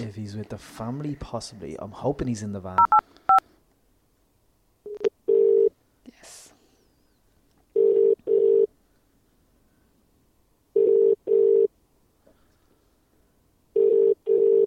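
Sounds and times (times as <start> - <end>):
speech: 0.0 - 3.1
telephone ringback tone, call unanswered: 2.8 - 3.0, 4.9 - 5.7, 7.8 - 8.7, 10.8 - 11.7, 13.8 - 14.6.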